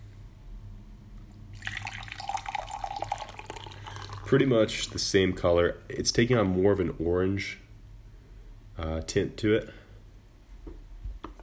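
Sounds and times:
liquid being poured out in a splashing gurgling stream: 1.6s - 5.2s
speech: 4.3s - 7.6s, 8.8s - 9.8s.

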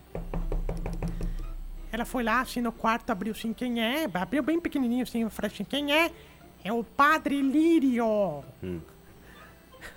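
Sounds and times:
firm knocking on a door in a convent: 0.1s - 1.4s
speech: 1.9s - 9.0s.

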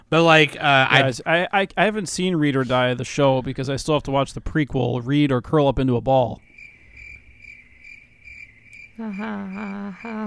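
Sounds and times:
speech: 0.1s - 6.5s, 9.0s - 10.2s
crickets chirping: 6.4s - 10.2s.

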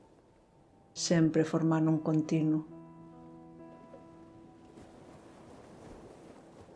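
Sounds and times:
ocean waves rolling in and out: 0.0s - 6.7s
speech: 1.0s - 2.8s.

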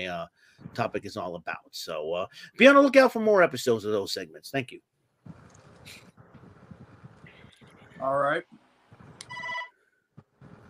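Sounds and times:
speech: 0.0s - 6.1s, 8.0s - 8.6s
phone ringing in a short electronic chirp: 9.2s - 9.8s.

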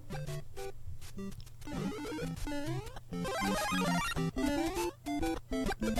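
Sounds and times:
bright synthesized arpeggios of retro video game music: 1.7s - 5.9s.

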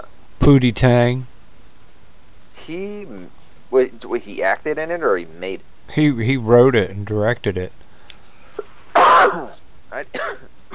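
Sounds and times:
speech: 0.4s - 1.3s, 2.6s - 7.8s, 9.2s - 10.5s
person coughing harshly: 9.0s - 10.7s.

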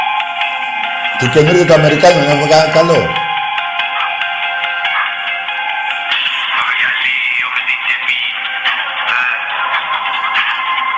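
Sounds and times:
trap song through a small tinny speaker: 0.0s - 10.9s
speech: 1.2s - 3.2s.

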